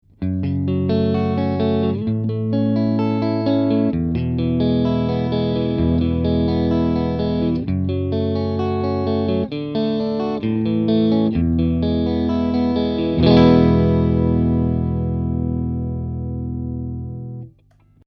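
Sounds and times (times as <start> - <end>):
Stratocaster American Professional electric guitar arpeggio on the middle neck: 0.2 - 17.5.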